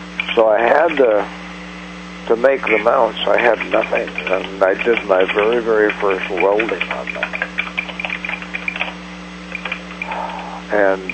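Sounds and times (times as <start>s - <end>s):
steady low electrical hum: 0.0s - 11.1s
speech: 0.4s - 1.4s, 2.3s - 7.4s, 10.7s - 11.1s
typing on a computer keyboard: 3.7s - 10.3s.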